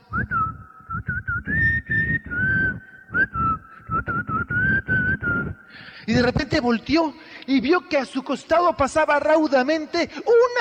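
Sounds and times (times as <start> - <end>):
person whistling a wandering tune: 0.0 - 5.8
speech: 6.1 - 10.5.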